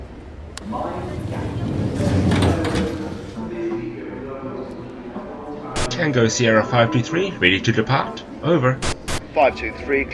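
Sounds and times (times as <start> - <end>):
London Underground Piccadilly line train doors sliding shut: 0.6 - 3.8
steady hum of the Underground carriage: 0.6 - 5.0
speech: 6.1 - 10.1.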